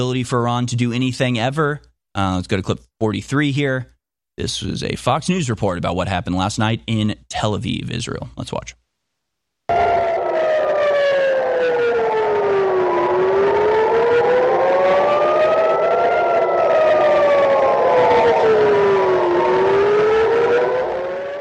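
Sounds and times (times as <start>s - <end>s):
speech: 0.0s - 8.8s
air raid sirens wailing over Tel Aviv, Israel during Iranian missile barrage: 9.7s - 21.4s.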